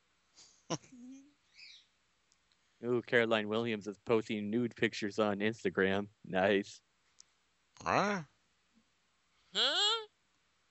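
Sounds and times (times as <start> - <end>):
speech: 0.7 - 1.0, 2.8 - 6.8, 7.8 - 8.3, 9.5 - 9.8
pet bird chirping: 1.5 - 1.9
low murmur-like tone: 2.8 - 6.8, 7.8 - 8.2.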